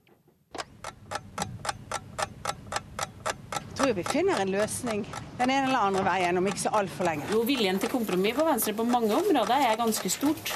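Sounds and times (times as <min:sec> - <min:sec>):
low hum: 0:00.5 - 0:10.5
clock ticking loudly: 0:00.6 - 0:10.5
speech: 0:03.9 - 0:10.5.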